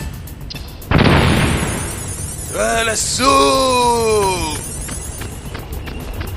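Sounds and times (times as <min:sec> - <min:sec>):
grenade explosion on a tank in a video game: 0:00.9 - 0:02.3
speech: 0:02.5 - 0:04.6.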